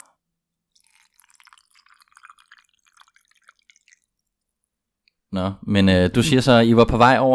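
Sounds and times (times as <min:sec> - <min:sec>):
tea pouring into a cup: 0:00.7 - 0:04.8
speech: 0:05.3 - 0:07.3.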